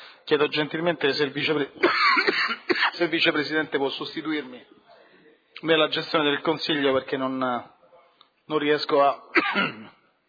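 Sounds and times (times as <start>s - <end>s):
speech: 0.3s - 4.8s, 5.6s - 7.8s, 8.5s - 10.0s
hoarse coughing from the person chairing a council meeting: 1.8s - 3.0s, 9.3s - 10.0s
throat clearing from the person chairing a council meeting: 9.3s - 10.0s.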